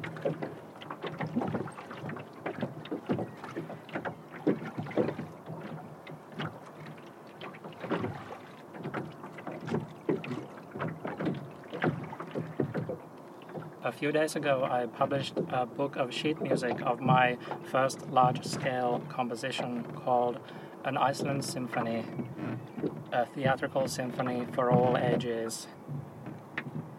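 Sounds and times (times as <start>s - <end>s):
oars of a rowing boat dipping and splashing on a lake: 0.0s - 26.9s
rowing boat creaking: 0.0s - 26.9s
soft wind noise: 0.0s - 26.9s
speech: 0.2s - 0.5s, 14.0s - 25.9s.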